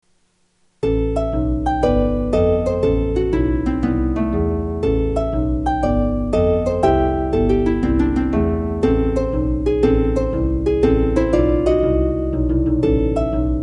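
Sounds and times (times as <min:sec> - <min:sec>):
jazz music: 0:00.8 - 0:13.6.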